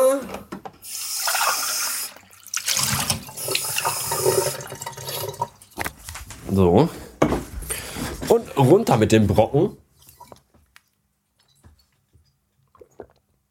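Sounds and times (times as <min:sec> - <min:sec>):
water running from a tap into a sink: 0:00.8 - 0:05.6
speech: 0:06.5 - 0:07.0, 0:08.4 - 0:09.8.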